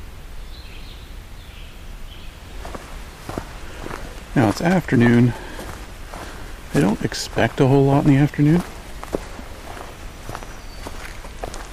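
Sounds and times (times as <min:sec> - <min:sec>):
footsteps of someone hiking in the afternoon: 0:02.5 - 0:11.7
speech: 0:04.4 - 0:05.4, 0:06.8 - 0:08.8.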